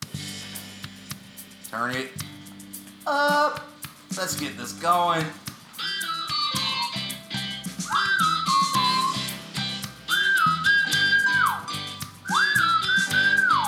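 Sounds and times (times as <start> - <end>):
steady rhythmic musical backing track: 0.0 - 13.6
speech: 1.7 - 2.3, 3.1 - 5.9
person whistling a melodic tune: 5.8 - 13.6.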